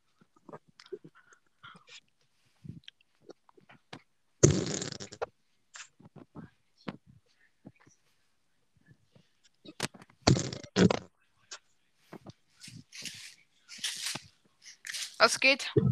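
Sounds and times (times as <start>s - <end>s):
fart blown directly into a microphone: 4.4s - 6.0s, 10.2s - 11.1s
speech: 15.2s - 15.8s.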